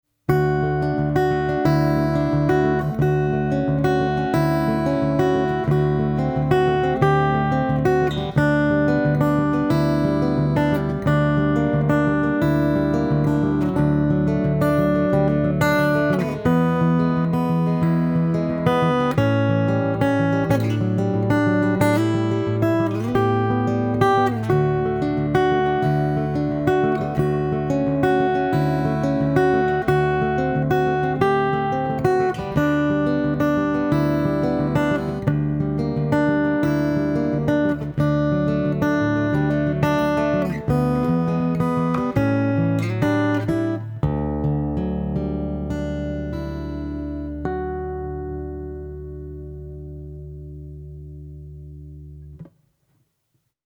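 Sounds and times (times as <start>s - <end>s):
Fender Acoustasonic Jazzmaster guitar: 0.3s - 52.6s.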